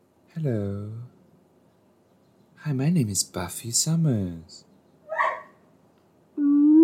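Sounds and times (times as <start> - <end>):
speech: 0.4 - 1.1, 2.6 - 4.7
dog whimpering: 5.1 - 5.5
dog yelping: 5.1 - 5.6.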